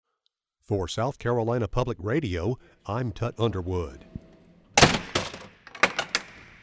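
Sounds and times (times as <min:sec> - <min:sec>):
speech: 0:00.7 - 0:04.1
latch and bars clanking into place: 0:04.0 - 0:06.6
heavy metal jail door slamming shut: 0:04.8 - 0:06.6.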